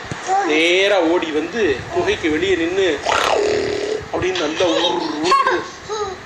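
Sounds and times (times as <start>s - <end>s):
speech: 0.4s - 3.2s, 4.1s - 5.7s
voice imitating a tiger's roar: 3.0s - 4.1s.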